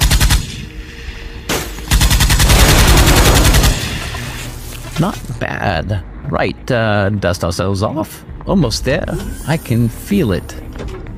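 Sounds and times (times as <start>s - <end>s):
rapid automatic gunfire in a video game shooting at laser turrets: 0.0s - 0.4s, 1.9s - 4.0s
speech: 5.0s - 11.1s.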